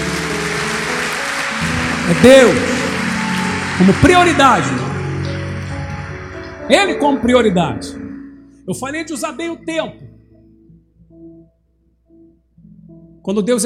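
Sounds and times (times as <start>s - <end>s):
audience applause of many hands clapping: 0.0s - 7.3s
speech: 2.1s - 2.8s, 3.8s - 4.9s, 6.7s - 8.0s, 8.7s - 10.0s, 13.2s - 13.6s.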